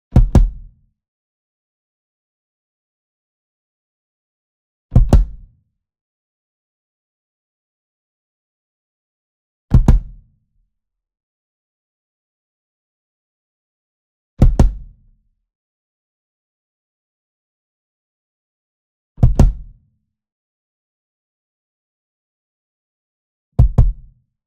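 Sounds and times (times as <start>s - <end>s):
small kick drum double hit near: 0.2s - 0.7s, 5.0s - 5.4s, 9.7s - 10.2s, 14.4s - 14.9s, 19.2s - 19.7s, 23.6s - 24.1s.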